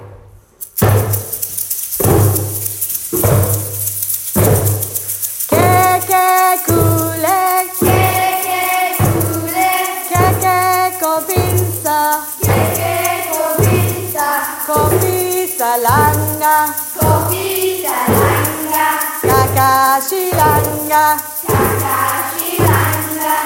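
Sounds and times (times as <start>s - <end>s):
African drumming: 0.6s - 23.4s
person singing: 5.2s - 23.4s.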